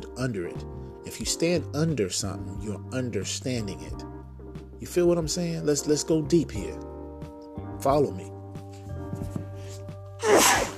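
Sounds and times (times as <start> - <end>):
speech: 0.2 - 4.1, 4.8 - 6.9, 7.8 - 8.4
person sneezing: 10.2 - 10.7.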